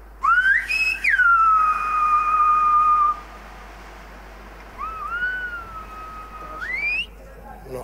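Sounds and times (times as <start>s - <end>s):
Silbo whistled language of the Canary Islands: 0.2s - 3.3s, 4.7s - 7.2s.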